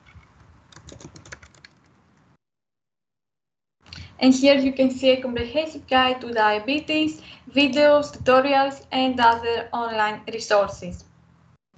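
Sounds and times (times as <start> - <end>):
typing on a computer keyboard: 0.0 - 2.3
speech: 4.2 - 11.1.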